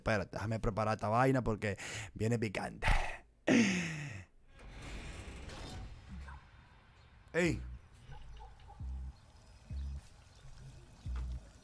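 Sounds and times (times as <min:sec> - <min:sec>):
speech: 0:00.0 - 0:03.8, 0:07.4 - 0:07.7
water pouring from fountain statues: 0:09.2 - 0:11.6.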